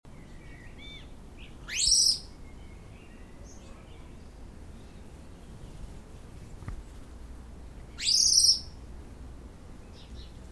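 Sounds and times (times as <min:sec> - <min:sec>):
common blackbird Turdus merula calling: 0:00.1 - 0:05.6, 0:07.9 - 0:08.8
background hiss: 0:00.1 - 0:10.5.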